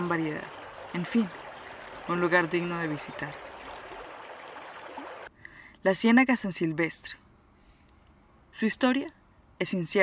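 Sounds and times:
calm river water flowing: 0.0 - 5.3
speech: 0.1 - 1.4, 2.1 - 3.4, 5.8 - 7.2, 8.6 - 10.0.

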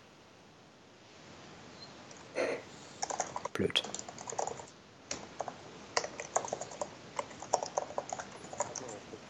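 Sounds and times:
computer mouse clicking: 3.0 - 9.0
speech: 3.6 - 4.0.

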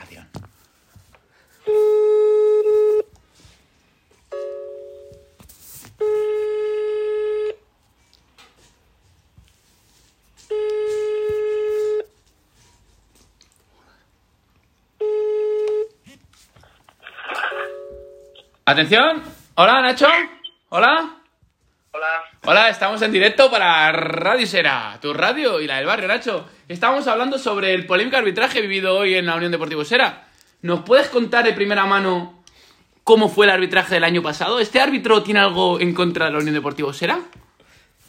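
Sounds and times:
phone line ringback tone: 1.6 - 3.1, 4.3 - 5.3, 6.0 - 7.6, 10.5 - 12.1, 15.0 - 15.9, 17.4 - 18.5
speech: 18.7 - 21.2, 22.4 - 32.4, 33.0 - 37.4.

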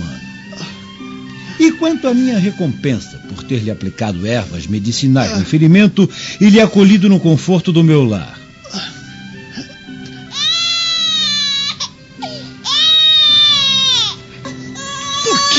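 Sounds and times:
infant wailing: 0.0 - 1.0, 8.6 - 15.5
speech: 1.6 - 8.9.

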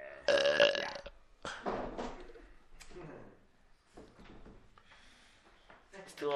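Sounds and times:
loud rough burp: 0.0 - 1.1.

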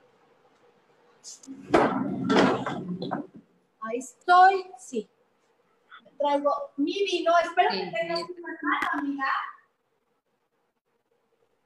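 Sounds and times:
speech: 1.2 - 5.2, 6.2 - 9.5
wooden chair knocking as it is set down: 1.6 - 3.5.

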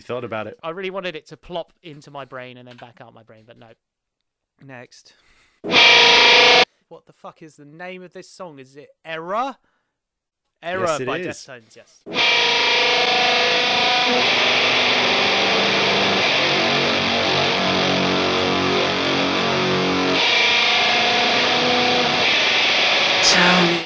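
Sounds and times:
speech: 0.0 - 3.9, 4.6 - 9.7, 10.6 - 15.7
heavily distorted splatty fuzz guitar in a loud rock song: 5.7 - 6.6, 12.1 - 23.8.

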